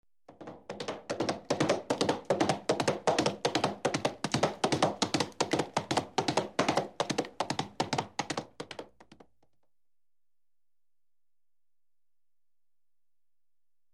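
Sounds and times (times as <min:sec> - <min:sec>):
horse galloping at full speed: 0:00.3 - 0:09.4.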